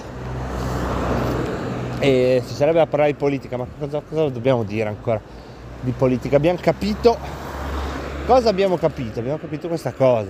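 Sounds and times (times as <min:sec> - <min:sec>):
continuous roadway hiss: 0:00.0 - 0:03.0, 0:05.0 - 0:08.9
passing cars on a busy road: 0:00.0 - 0:10.2
speech: 0:02.0 - 0:07.4, 0:08.3 - 0:10.2.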